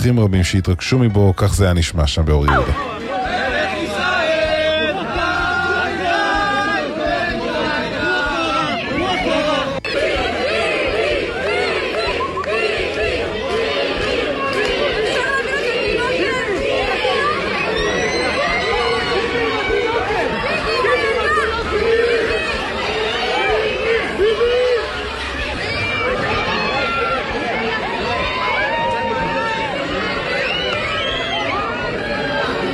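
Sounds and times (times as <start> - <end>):
speech: 0.0 - 3.0
dense crowd chattering and shouting in a shopping mall: 0.0 - 32.7.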